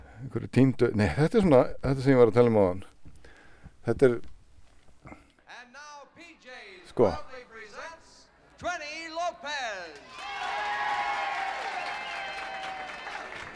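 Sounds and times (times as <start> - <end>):
speech: 0.2 - 3.0, 3.8 - 4.3, 7.0 - 7.3
audience applause and cheering: 9.9 - 13.5
crowd whooping and shouting with excitement: 9.9 - 13.5.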